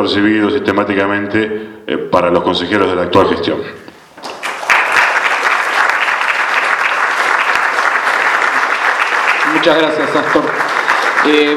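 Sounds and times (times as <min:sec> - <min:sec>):
speech: 0:00.0 - 0:03.8, 0:09.6 - 0:11.5
audience applause at a consultative council meeting: 0:04.2 - 0:11.5.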